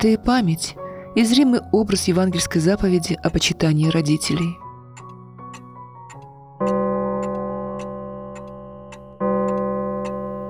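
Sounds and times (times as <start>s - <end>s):
speech: 0.0s - 4.6s
clock ticking: 3.3s - 10.4s
resonant clock chime strikes: 6.6s - 10.4s.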